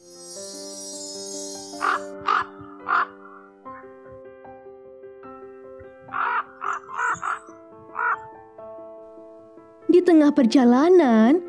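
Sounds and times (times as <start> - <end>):
speech: 1.8 - 2.1, 10.1 - 11.4
crow cawing: 1.8 - 3.6, 6.1 - 8.4.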